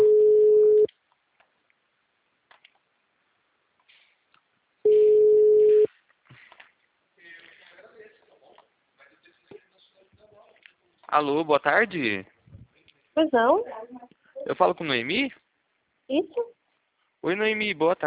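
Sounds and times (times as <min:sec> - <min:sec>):
telephone line tones from an automated answering system: 0:00.0 - 0:00.9, 0:04.9 - 0:05.9
speech: 0:11.1 - 0:12.3, 0:13.2 - 0:15.4, 0:16.1 - 0:16.6, 0:17.2 - 0:18.0.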